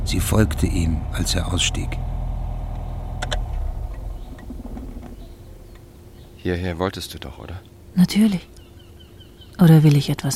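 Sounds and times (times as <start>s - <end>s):
car engine rumbling as the car pulls into a parking lot: 0.0s - 6.6s
speech: 0.1s - 2.1s, 6.4s - 8.6s, 9.6s - 10.3s.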